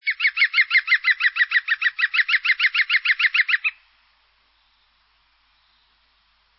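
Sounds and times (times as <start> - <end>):
green woodpecker: 0.0 - 3.8.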